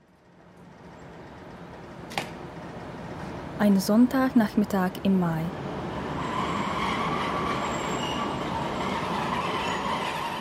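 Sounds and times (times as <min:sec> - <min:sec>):
train rumbling at a railway station in Bad Schandau: 0:00.1 - 0:10.3
speech: 0:03.6 - 0:05.7
faint high squeal from a train: 0:06.2 - 0:10.3.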